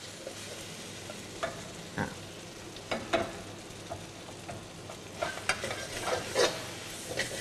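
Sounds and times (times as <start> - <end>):
bean sprouts stir-fried with sauce sizzling in a pan: 0.0 - 7.3
utensil scraping and clacking as bean sprouts are tossed in a pan: 5.2 - 7.3.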